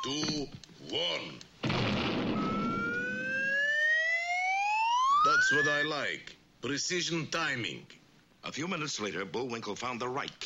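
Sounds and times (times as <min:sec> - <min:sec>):
speech: 0:00.0 - 0:02.4, 0:05.3 - 0:10.4
fire engine siren winding up: 0:02.3 - 0:05.8.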